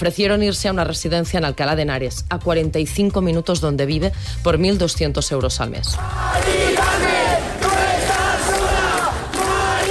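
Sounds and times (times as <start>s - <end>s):
speech: 0.0s - 7.1s
protest crowd chanting at an overnight eviction sit-in: 6.0s - 9.8s.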